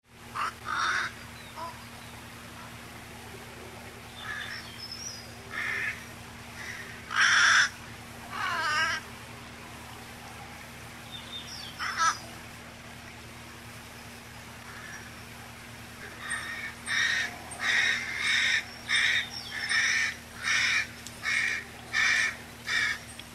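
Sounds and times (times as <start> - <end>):
Corvus corone: 0.4 - 1.8, 6.6 - 9.0, 11.8 - 12.2, 16.2 - 23.0.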